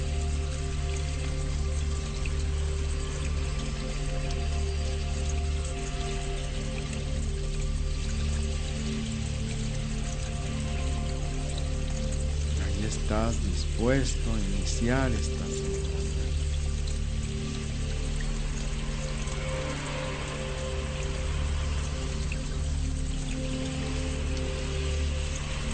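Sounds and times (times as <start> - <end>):
waterfall pouring in the mountains: 0.0 - 25.7
speech: 13.1 - 15.6.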